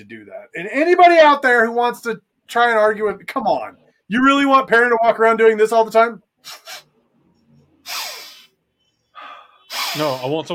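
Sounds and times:
speech: 0:00.0 - 0:06.9, 0:10.0 - 0:10.5
person imitating sniffing the air: 0:06.4 - 0:07.0, 0:07.8 - 0:10.4.

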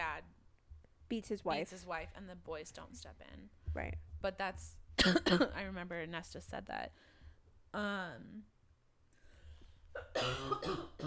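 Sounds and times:
speech: 0:01.1 - 0:07.1, 0:07.7 - 0:08.5, 0:10.0 - 0:11.0
harsh cough: 0:05.0 - 0:05.5, 0:09.9 - 0:11.0.

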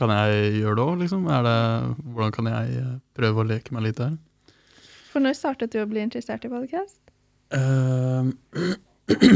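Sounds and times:
speech: 0:00.0 - 0:04.3, 0:05.2 - 0:09.3
coughing: 0:07.6 - 0:09.3
throat clearing: 0:07.6 - 0:09.3.

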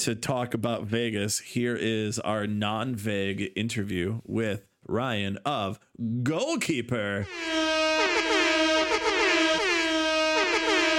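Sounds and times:
speech: 0:00.0 - 0:07.8
air horns blaring: 0:07.2 - 0:10.9.

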